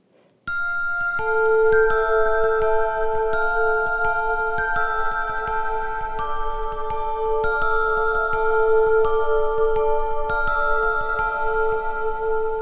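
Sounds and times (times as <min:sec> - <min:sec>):
whistled melody in western-film style: 0:00.5 - 0:12.6.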